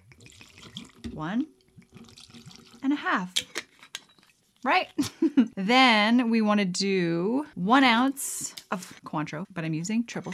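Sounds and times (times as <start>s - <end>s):
vodka free-poured into a cocktail shaker tin for a martini: 0.0s - 1.2s, 1.8s - 2.8s
speech: 1.2s - 1.6s, 2.8s - 3.5s, 4.6s - 10.3s.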